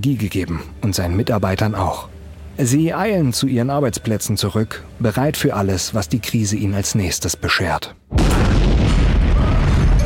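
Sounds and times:
speech: 0.0 - 8.6
explosion at a nuclear power plant with rumbling roar: 8.1 - 10.0.

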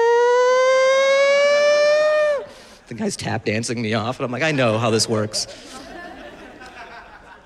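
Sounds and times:
siren wailing: 0.0 - 2.5
speech: 3.0 - 5.8
laughter: 4.4 - 7.4.

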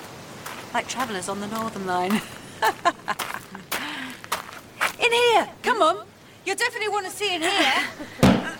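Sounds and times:
speech: 0.7 - 3.0, 5.1 - 8.3
heavy thuds forcing open a boarded-up door: 8.2 - 8.5.

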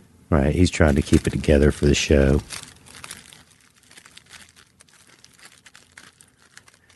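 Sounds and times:
speech: 0.3 - 2.6
thin rolling paper crinkling while rolling a joint: 0.6 - 6.9.

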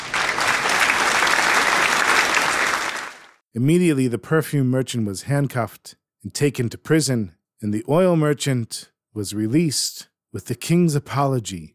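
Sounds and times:
crowd applauding in a courtroom: 0.0 - 3.4
speech: 3.6 - 11.7.

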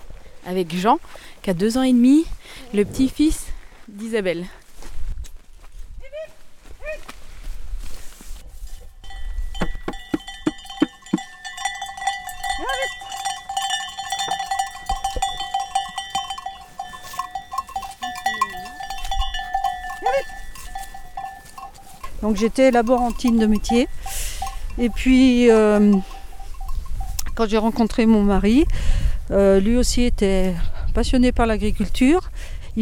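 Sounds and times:
speech: 0.4 - 4.6, 22.3 - 24.2, 24.8 - 26.1, 27.4 - 32.2
ewe hooves shuffling: 4.7 - 28.4
dozens of ewe bells clanking and jingling: 8.6 - 28.3.

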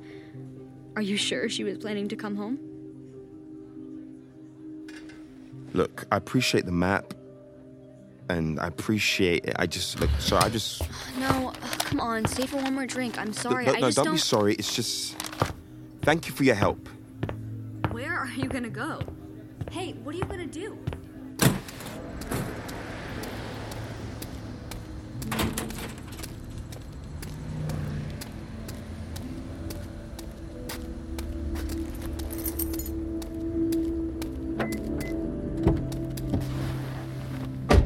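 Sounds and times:
speech: 1.0 - 2.7, 5.8 - 7.2, 8.3 - 17.0, 18.4 - 21.0
car driving on a road: 21.6 - 37.7.

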